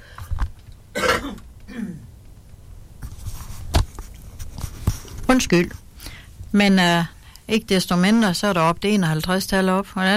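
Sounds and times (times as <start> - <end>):
person coughing: 1.0 - 2.1
throat clearing: 1.0 - 2.1
speech: 5.3 - 5.8, 6.5 - 10.1.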